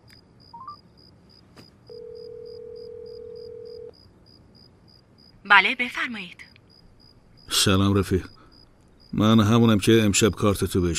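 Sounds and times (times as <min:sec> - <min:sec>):
long steady tone on the telephone line: 0:01.9 - 0:03.9
speech: 0:05.5 - 0:06.4, 0:07.6 - 0:08.4, 0:09.1 - 0:10.9.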